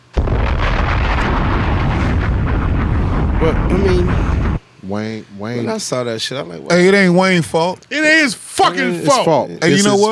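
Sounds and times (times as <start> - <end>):
bomb explosion sound effect: 0.0 - 4.6
dense steady roaring rumble after a bomb explosion: 0.0 - 4.6
speech: 3.4 - 10.1.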